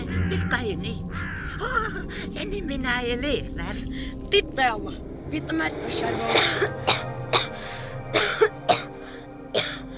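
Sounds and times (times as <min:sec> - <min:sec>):
speech: 0:00.2 - 0:07.0
harsh hacking coughing fit: 0:06.3 - 0:09.9.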